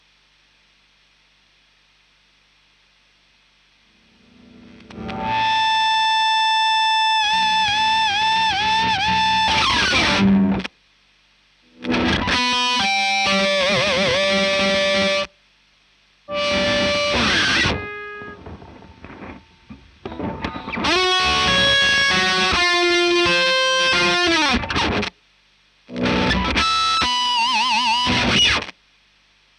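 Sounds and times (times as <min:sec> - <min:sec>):
guitar ad libs: 0:04.0 - 0:10.7, 0:11.7 - 0:15.3, 0:16.3 - 0:25.1, 0:25.9 - 0:28.7.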